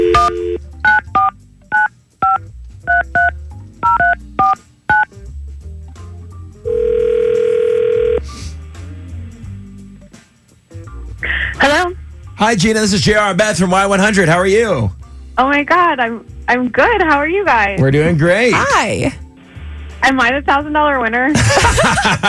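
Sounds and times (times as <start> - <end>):
long steady telephone ringing tone on the line: 0.0 - 5.1, 6.6 - 8.3
touch-tone keypad beeps of a phone number being dialed: 0.0 - 5.1
speech: 12.4 - 19.2, 20.1 - 22.2
laughter: 21.3 - 22.2.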